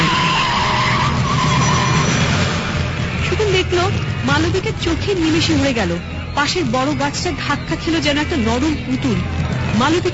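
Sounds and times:
car braking hard with tires skidding: 0:00.0 - 0:03.3
speech: 0:04.6 - 0:10.1.

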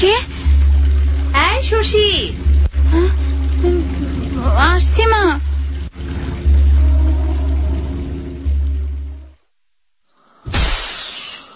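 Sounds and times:
low droning hum: 0:00.0 - 0:10.0
something shattering: 0:10.5 - 0:11.5.

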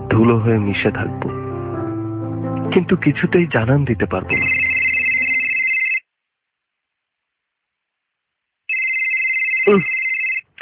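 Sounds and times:
speech: 0:00.1 - 0:01.4, 0:02.7 - 0:04.6
telephone ringing with a steady high electronic tone: 0:04.3 - 0:06.1, 0:08.7 - 0:10.5
brief voice: 0:09.7 - 0:09.9.

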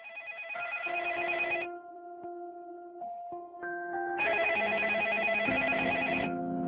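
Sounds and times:
electronic telephone ringing as a call is placed: 0:00.0 - 0:01.8, 0:04.2 - 0:06.5.

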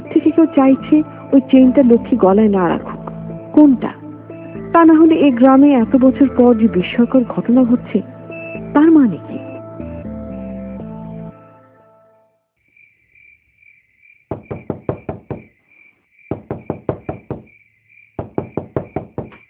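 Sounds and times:
music: 0:00.0 - 0:12.5
speech: 0:00.3 - 0:02.9, 0:03.6 - 0:04.0, 0:04.7 - 0:08.2, 0:08.8 - 0:09.4
steady high cricket chirping: 0:12.6 - 0:19.4
rapid loud knocking on a door from outside: 0:14.3 - 0:15.5, 0:16.3 - 0:17.6, 0:18.2 - 0:19.4.

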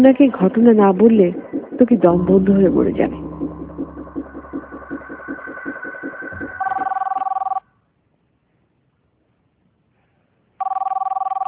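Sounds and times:
speech: 0:00.0 - 0:03.3
low rhythmic pulsing rumble: 0:00.2 - 0:06.7
telephone ringing: 0:06.6 - 0:07.6, 0:10.6 - 0:11.4.

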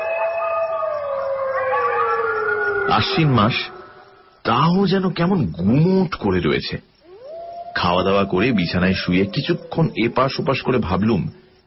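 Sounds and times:
chorus of jackals howling from the rice fields behind a wood: 0:00.0 - 0:04.3, 0:07.0 - 0:11.2
speech: 0:02.9 - 0:03.8, 0:04.4 - 0:06.9, 0:07.8 - 0:11.4.

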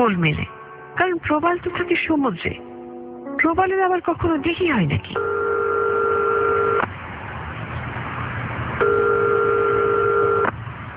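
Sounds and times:
speech: 0:00.0 - 0:02.7, 0:03.4 - 0:05.5, 0:08.8 - 0:09.0
two-pitch telephone ringing tones: 0:05.2 - 0:06.8, 0:08.8 - 0:10.5.

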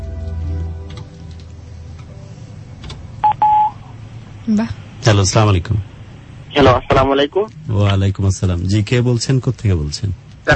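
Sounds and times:
low hum: 0:00.0 - 0:10.5
telephone keypad tones of a call being dialed: 0:03.2 - 0:03.8
speech: 0:04.5 - 0:05.9, 0:06.6 - 0:10.5.

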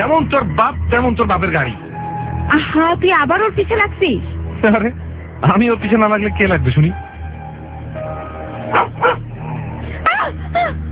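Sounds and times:
speech: 0:00.0 - 0:01.9, 0:02.5 - 0:07.0
steady low rumble: 0:00.0 - 0:10.8
dog giving short high yelping barks: 0:08.7 - 0:09.3.

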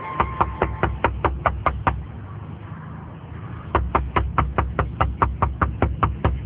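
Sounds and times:
knocking on a balcony door: 0:00.2 - 0:02.0, 0:03.8 - 0:06.4.

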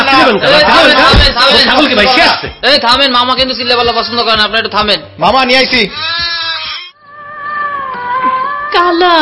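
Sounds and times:
speech: 0:00.1 - 0:06.4, 0:08.7 - 0:09.2
goat bleating while chewing on cloth: 0:05.9 - 0:07.0.

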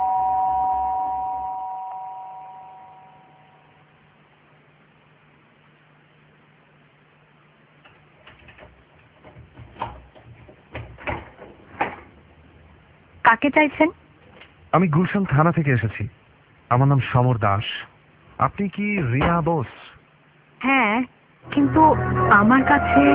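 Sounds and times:
doorbell ringing in a home: 0:00.0 - 0:03.6
speech: 0:13.3 - 0:14.0, 0:14.8 - 0:19.8, 0:20.6 - 0:23.1.

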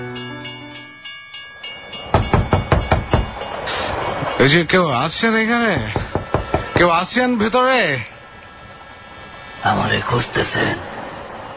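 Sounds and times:
train wheels clickety-clack: 0:01.8 - 0:07.0
speech: 0:04.5 - 0:06.0, 0:06.8 - 0:08.1, 0:09.6 - 0:10.9.

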